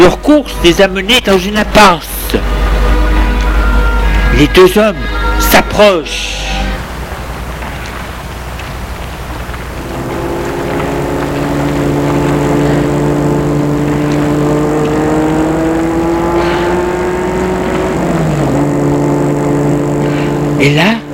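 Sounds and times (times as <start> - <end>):
speech: 0.0 - 2.6, 4.3 - 6.4, 20.6 - 20.9
black Rolls-Royce car engine droning: 0.0 - 21.1.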